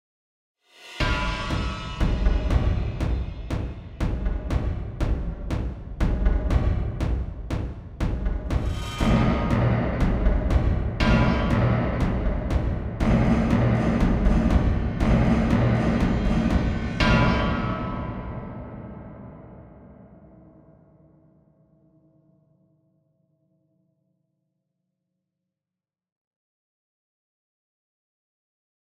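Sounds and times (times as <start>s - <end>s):
dystopian percussive drums: 0.9s - 18.5s.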